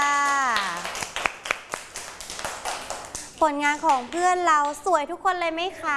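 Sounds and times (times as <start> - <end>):
small group of children clapping hands in applause: 0.0 - 4.0
speech: 3.4 - 5.9.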